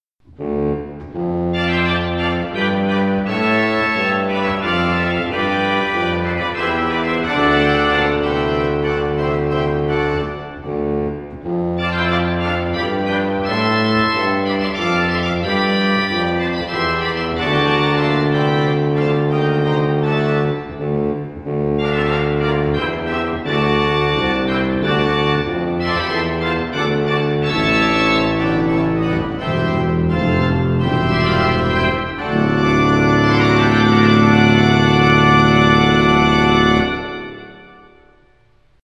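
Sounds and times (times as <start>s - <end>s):
Sauer pipe organ 16-foot pedal trombone stop: 0.3s - 38.8s.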